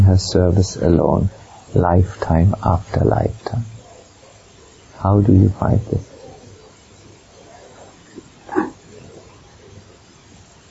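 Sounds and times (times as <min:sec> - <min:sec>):
speech: 0:00.1 - 0:03.7, 0:05.0 - 0:06.1
small monkey calling: 0:08.1 - 0:08.9.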